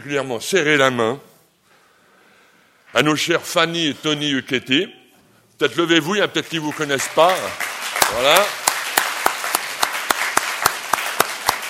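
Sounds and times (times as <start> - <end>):
speech: 0.0 - 1.3, 2.9 - 5.0, 5.6 - 8.6
audience applauding: 6.5 - 11.6
sharp evenly spaced claps at a quick regular rhythm: 6.6 - 11.6.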